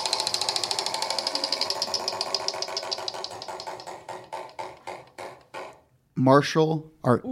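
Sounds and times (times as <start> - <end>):
prize wheel spun in a quiz game: 0.0 - 5.8
speech: 6.2 - 7.2.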